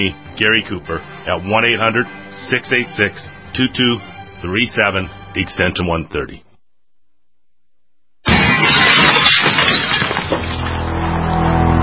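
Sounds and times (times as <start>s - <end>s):
speech: 0.0s - 6.4s
glass smashing and splintering during a home burglary break-in: 8.3s - 11.5s.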